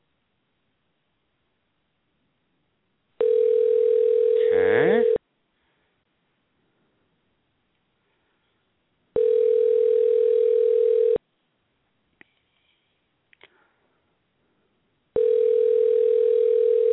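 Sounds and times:
telephone ringback tone while dialing: 3.2 - 5.2, 9.2 - 11.2, 15.2 - 16.9.

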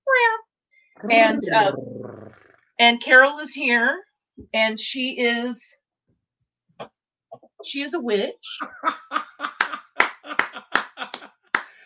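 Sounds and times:
laughter: 1.0 - 1.8, 8.5 - 11.4
person in a kitty Halloween costume imitating a cat's meow: 1.0 - 2.0
speech: 1.0 - 2.0, 2.8 - 5.8, 7.6 - 9.3.

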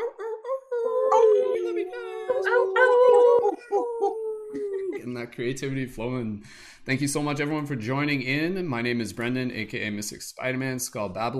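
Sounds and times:
several voices imitating wolf howls over microphones: 0.0 - 5.0
speech: 5.0 - 11.3.

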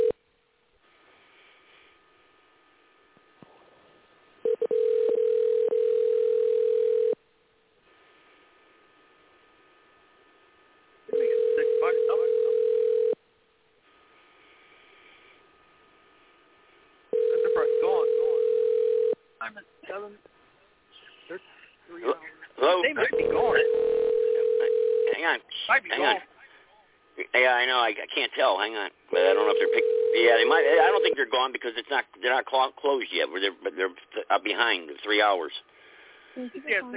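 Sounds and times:
telephone call tones as a call is dialed out: 4.4 - 7.2, 11.1 - 13.2, 17.1 - 19.2, 23.1 - 25.3, 29.2 - 31.2
speech: 19.5 - 20.4, 25.3 - 26.3, 27.3 - 35.7, 36.4 - 36.9.

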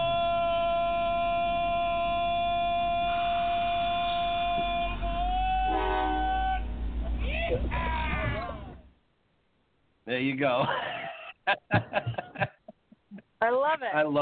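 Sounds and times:
low rumbling train engine: 0.0 - 9.0
train horn chord-like blast: 5.4 - 6.8
speech: 10.1 - 11.0, 13.8 - 14.1
laughter: 10.5 - 13.3.

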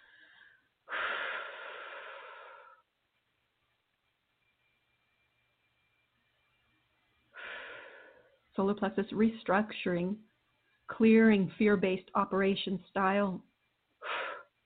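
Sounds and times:
person breathing deeply and slowly: 0.0 - 2.9, 7.4 - 8.4, 14.0 - 14.6
speech: 8.6 - 10.3, 10.9 - 13.5.

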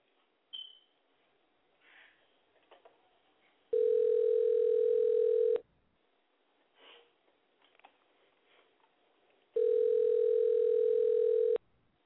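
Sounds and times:
person sniffing: 1.8 - 2.3, 6.7 - 7.2
ringback tone on an outgoing telephone call: 3.8 - 5.6, 9.6 - 11.6.

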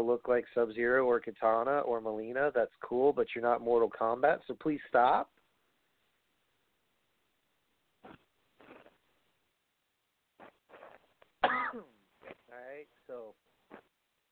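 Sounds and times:
speech: 0.0 - 5.4, 11.7 - 12.0
raspy gravelly throat clearing: 10.4 - 12.4
person coughing: 11.4 - 12.0.

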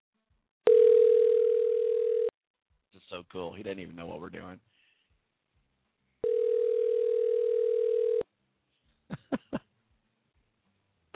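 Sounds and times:
phone line ringback tone for an outgoing call: 0.7 - 2.3, 6.2 - 8.2
speech: 3.1 - 4.8.

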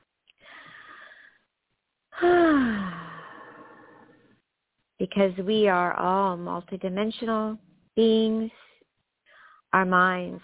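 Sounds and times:
deep breath in and out: 0.4 - 1.5, 2.2 - 4.4, 8.6 - 9.7
voiced sigh on exhale: 2.2 - 4.3
speech: 5.1 - 8.6, 9.7 - 10.4.

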